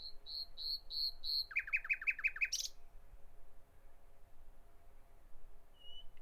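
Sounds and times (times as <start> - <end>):
common nightingale song: 0.0 - 2.7.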